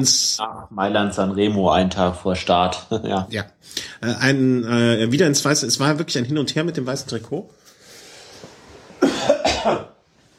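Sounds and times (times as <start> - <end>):
speech: 0.0 - 7.7, 9.6 - 9.9
quiet room noise: 0.0 - 10.3
harsh raspy coughs: 9.0 - 10.0.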